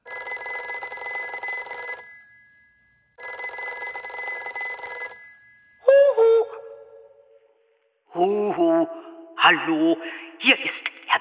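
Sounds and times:
telephone bell ringing: 0.0s - 7.2s
speech: 9.5s - 11.2s.

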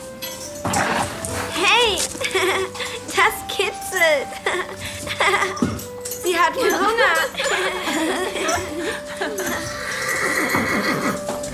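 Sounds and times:
horse stamping hooves: 0.0s - 11.5s
horse snorting: 0.6s - 3.1s, 9.1s - 11.5s
laughter: 2.1s - 3.1s, 4.3s - 5.8s, 6.6s - 11.2s
horse whinnying: 9.4s - 11.5s.

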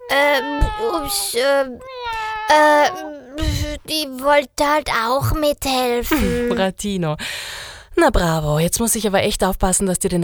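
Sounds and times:
cat meowing loudly: 0.0s - 3.9s
speech: 0.1s - 10.2s.

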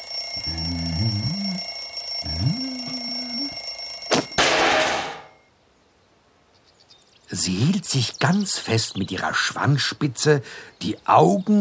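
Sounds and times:
alarm clock bell rattling: 0.0s - 4.5s
low wavering tonal sounds: 0.4s - 3.6s
speech: 7.3s - 11.5s.

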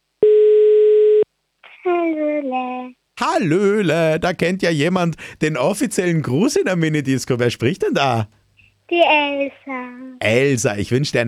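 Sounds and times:
steady telephone tone as a call is placed: 0.2s - 1.2s
speech: 2.5s - 11.2s.

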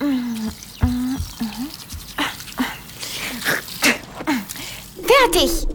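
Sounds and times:
person humming: 0.0s - 2.8s
wet brushing of teeth with a toothbrush: 0.0s - 4.8s
speech: 5.3s - 5.6s.

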